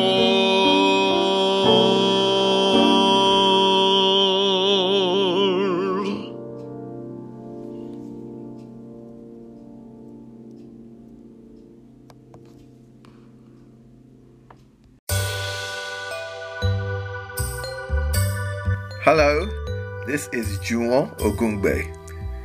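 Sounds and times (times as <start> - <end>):
recorded song playing: 0.0 - 9.1, 15.1 - 22.4
speech: 20.2 - 22.0.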